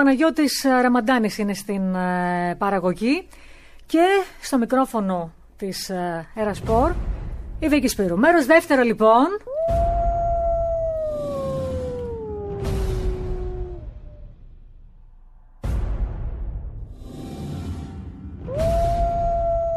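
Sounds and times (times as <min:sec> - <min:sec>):
speech: 0:00.0 - 0:09.8
wolf howling: 0:09.5 - 0:14.4, 0:18.5 - 0:19.7.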